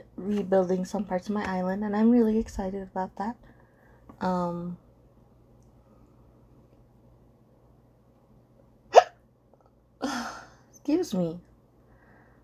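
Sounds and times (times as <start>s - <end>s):
quiet hum: 0.0s - 12.4s
speech: 0.2s - 3.5s, 4.2s - 4.8s, 10.9s - 11.5s
person hiccuping from eating noodles too fast: 8.9s - 9.2s.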